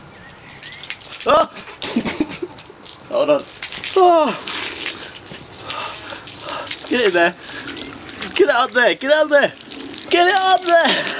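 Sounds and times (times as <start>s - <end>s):
tap water running through a hose into a condom: 0.2s - 11.1s
person exclaiming: 1.2s - 1.6s, 3.1s - 4.5s, 10.1s - 11.1s
speech: 1.2s - 2.2s, 3.1s - 4.6s, 6.9s - 7.5s, 8.4s - 11.1s.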